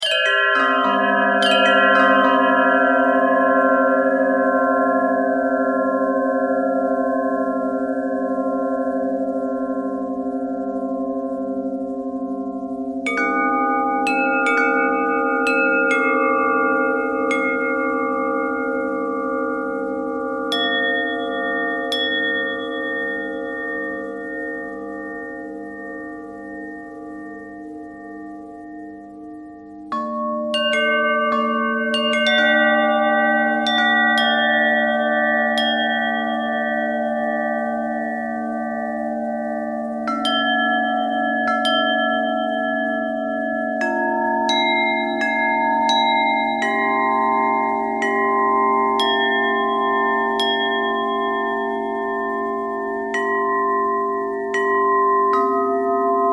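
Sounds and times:
bell with pitch bend twist: 0:00.0 - 0:56.3.

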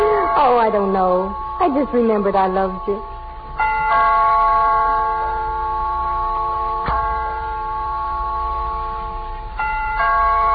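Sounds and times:
doorbell ringing: 0:00.0 - 0:10.5
speech: 0:00.7 - 0:03.2.

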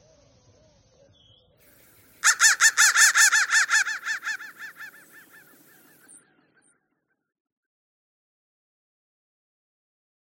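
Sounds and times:
crow giving hoarse arched calls: 0:02.2 - 0:06.2.

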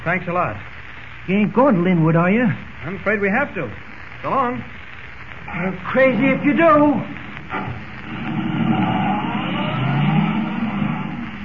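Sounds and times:
speech: 0:00.0 - 0:00.7, 0:01.3 - 0:04.8, 0:05.5 - 0:08.4
car engine roaring at top speed: 0:07.4 - 0:11.4.

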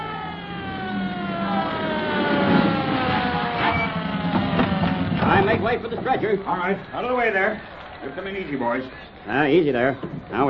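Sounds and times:
ambulance siren wailing: 0:00.0 - 0:06.9
rumbling background: 0:00.0 - 0:07.2
speech: 0:05.5 - 0:10.4.

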